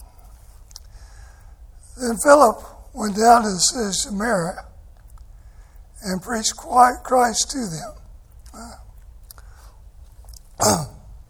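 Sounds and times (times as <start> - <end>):
speech: 2.0 - 4.7, 6.0 - 8.0
throat clearing: 8.5 - 8.9, 10.6 - 11.2.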